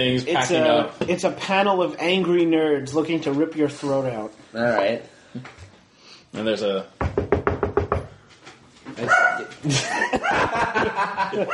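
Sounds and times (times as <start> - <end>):
speech: 0.0 - 5.6, 6.3 - 7.0, 11.0 - 11.5
quick series of knocks: 7.0 - 8.2
dog barking loudly: 9.0 - 9.5
laughter: 9.6 - 11.5.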